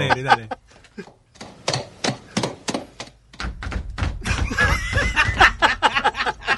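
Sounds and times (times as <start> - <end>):
speech: 0.0 - 1.1
people laughing: 0.0 - 1.2, 4.2 - 6.5
horse hoofbeat sound effect in a limping rhythm: 1.4 - 5.8.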